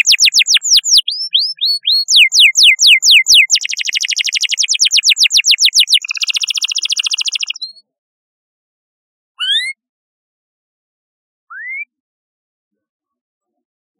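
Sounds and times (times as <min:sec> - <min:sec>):
canary song with buzzy high trill and whistled notes: 0:00.0 - 0:07.7.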